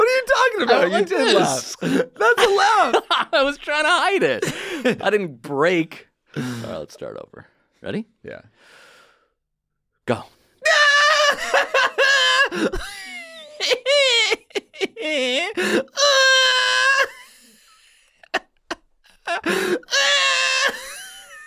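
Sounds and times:
person screaming and squealing: 0:00.0 - 0:03.0, 0:10.6 - 0:11.5, 0:15.0 - 0:17.2, 0:19.8 - 0:21.0
laughter: 0:00.0 - 0:05.0, 0:10.7 - 0:21.4
speech: 0:00.6 - 0:08.8, 0:10.1 - 0:11.5, 0:12.5 - 0:17.2, 0:19.3 - 0:20.8
breathy gasps: 0:06.3 - 0:06.8, 0:08.5 - 0:09.4, 0:19.4 - 0:19.9.

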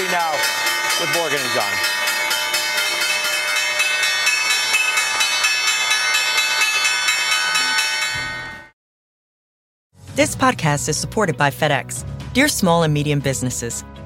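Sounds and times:
stock exchange closing bell ringing: 0:00.0 - 0:08.7
speech: 0:01.0 - 0:02.1, 0:10.2 - 0:14.0.

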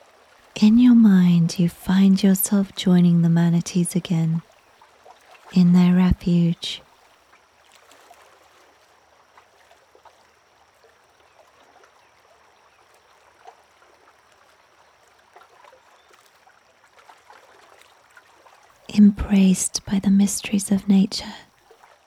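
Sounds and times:
small irregular river water splashes: 0:00.0 - 0:00.6, 0:04.1 - 0:05.6, 0:06.8 - 0:18.9, 0:21.4 - 0:22.0
river water lapping and trickling: 0:00.0 - 0:22.0
speech: 0:00.6 - 0:04.5, 0:05.5 - 0:06.8, 0:19.0 - 0:21.5.

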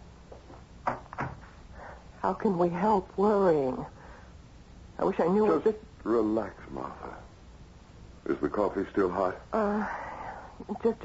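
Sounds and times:
door opening and closing: 0:00.8 - 0:01.5
speech: 0:02.2 - 0:04.0, 0:05.0 - 0:07.2, 0:08.3 - 0:10.0, 0:10.6 - 0:11.0.

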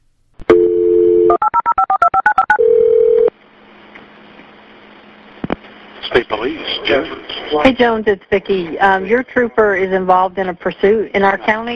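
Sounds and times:
steady telephone dial tone: 0:00.5 - 0:03.3
short keypad beeps dialing a number: 0:01.3 - 0:03.2
speech: 0:06.2 - 0:11.7.

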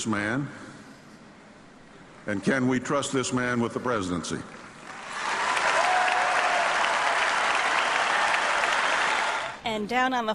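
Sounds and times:
speech: 0:00.0 - 0:00.6, 0:02.3 - 0:04.6, 0:09.8 - 0:10.3
large convention crowd cheering: 0:04.8 - 0:09.6.

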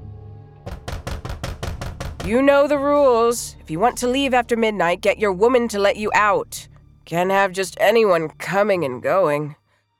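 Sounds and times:
fist pounding heavily on a bedroom door: 0:00.7 - 0:02.4
low hum: 0:01.8 - 0:09.5
speech: 0:02.3 - 0:09.6.

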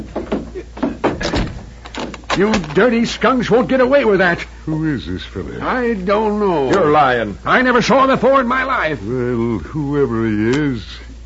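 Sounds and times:
wooden door pushed shut with a firm thud: 0:00.0 - 0:02.9
speech: 0:02.4 - 0:11.0.

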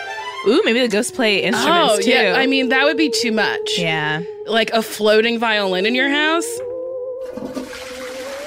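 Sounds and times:
speech: 0:00.4 - 0:06.7
toilet flushing: 0:07.3 - 0:08.4.

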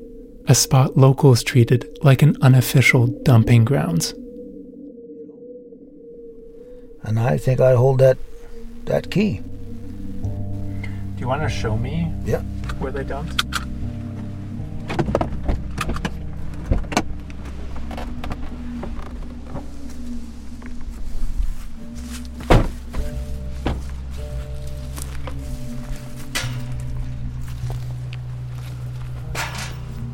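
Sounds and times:
speech: 0:00.0 - 0:04.2, 0:07.0 - 0:09.5, 0:11.2 - 0:13.6
steady low car engine hum: 0:08.2 - 0:30.1
handling noises: 0:12.4 - 0:30.1
scattered soft footsteps: 0:13.7 - 0:30.1
loud car door thunk: 0:22.4 - 0:23.9.

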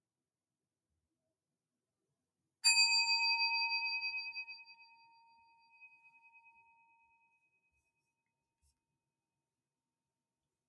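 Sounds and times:
meditation bell struck during a sitting meditation session: 0:02.6 - 0:06.6.

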